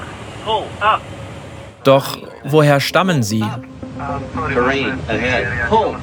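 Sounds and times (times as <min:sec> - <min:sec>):
speech: 0:00.4 - 0:01.2, 0:01.8 - 0:06.0
cockpit false-alarm synthetic voice alerts caused by navigation signal jamming: 0:01.9 - 0:05.1.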